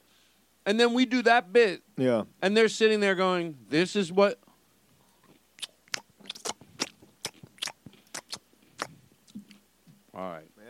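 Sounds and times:
speech: 0.7s - 4.4s
person chewing something crunchy into a microphone: 5.0s - 9.6s.

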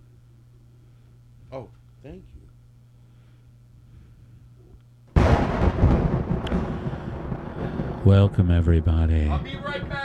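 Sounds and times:
speech: 1.5s - 2.4s, 8.0s - 10.0s
thunder crack and rumble: 5.2s - 10.0s.

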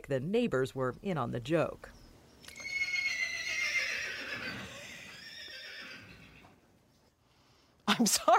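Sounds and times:
speech: 0.1s - 2.0s, 8.0s - 8.3s
horse neighing shrilly: 2.5s - 6.6s.

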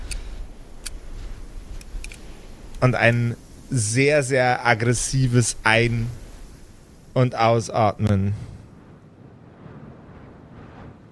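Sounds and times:
lighter flint rasping: 0.0s - 3.3s
speech: 2.8s - 6.2s, 7.2s - 8.5s.

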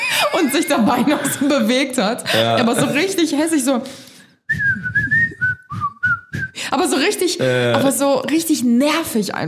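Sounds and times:
laughter: 0.0s - 1.7s, 2.3s - 3.2s
speech: 0.2s - 4.6s, 6.7s - 9.4s
person whistling a bouncy Christmas melody: 4.5s - 6.6s.

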